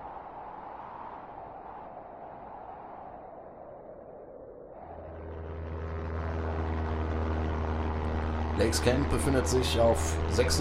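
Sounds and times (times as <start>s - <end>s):
aircraft in flight to a remote camp: 4.8s - 10.5s
speech: 8.6s - 10.5s.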